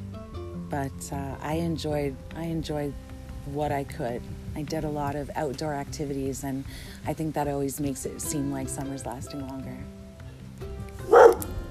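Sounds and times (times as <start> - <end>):
speech: 0.7 - 10.0
dog barking: 11.0 - 11.5.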